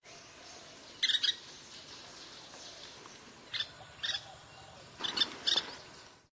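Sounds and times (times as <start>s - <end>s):
background hiss: 0.0s - 6.3s
Grey-capped pygmy woodpecker high squeaky calls: 1.0s - 1.4s, 3.5s - 5.8s.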